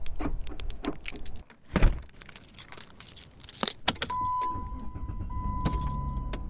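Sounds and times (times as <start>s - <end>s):
car handling sounds and thumps: 0.0s - 2.4s, 3.5s - 6.4s
keys jangling: 2.1s - 4.2s, 5.6s - 6.3s
vehicle chime steady tone: 4.1s - 6.4s.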